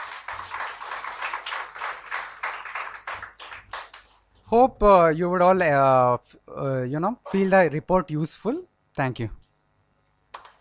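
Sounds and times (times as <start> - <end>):
audience applause at a report launch event: 0.0 - 4.2, 10.4 - 10.5
speech: 4.5 - 9.4.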